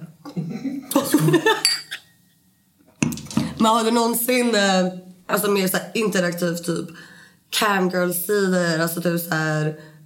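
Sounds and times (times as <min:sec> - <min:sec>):
speech: 0:01.1 - 0:01.8, 0:03.6 - 0:09.9
glasses clinking in a toast: 0:01.5 - 0:02.1.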